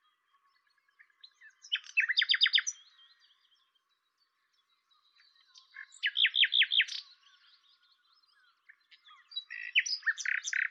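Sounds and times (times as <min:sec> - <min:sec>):
common nightingale Luscinia megarhynchos singing: 0:00.0 - 0:10.7.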